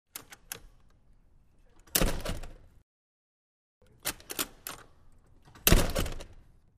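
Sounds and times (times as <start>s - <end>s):
metal door opening and closing: 1.8s - 2.7s, 4.0s - 6.5s.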